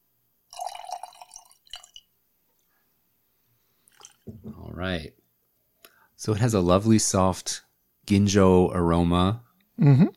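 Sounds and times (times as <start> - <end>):
sake with a sake meter value of -3 poured into a glass: 0.5 - 2.1, 3.8 - 4.7
speech: 4.3 - 5.2, 6.2 - 10.1.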